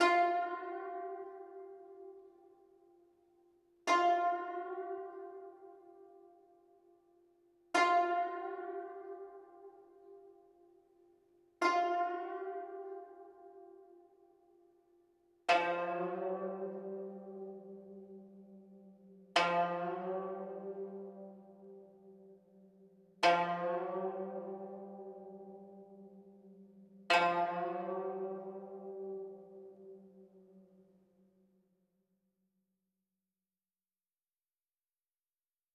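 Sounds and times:
guzheng melody in C minor: 0:00.0 - 0:02.3, 0:03.8 - 0:06.2, 0:07.7 - 0:10.4, 0:11.6 - 0:14.0, 0:15.5 - 0:18.7, 0:19.3 - 0:22.4, 0:23.1 - 0:30.5.

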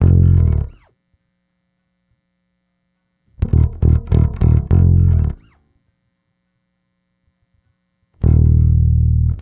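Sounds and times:
bass in F minor: 0:00.0 - 0:00.9, 0:03.3 - 0:05.6, 0:08.2 - 0:09.3.

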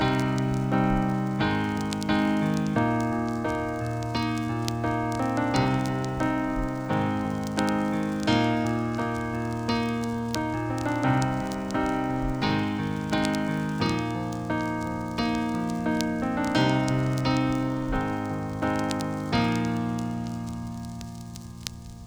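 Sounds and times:
full chords at 87 bpm: 0:00.0 - 0:22.0.

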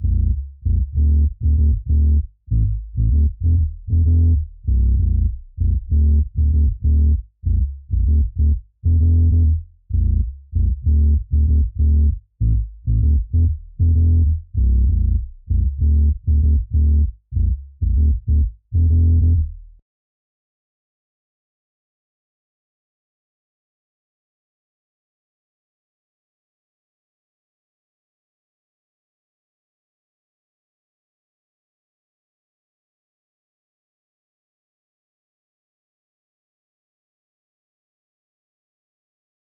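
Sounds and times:
bass line in A minor: 0:00.0 - 0:19.8.

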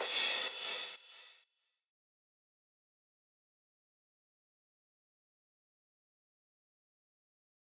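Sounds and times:
EDM future house crash cymbal loop: 0:00.0 - 0:01.4.

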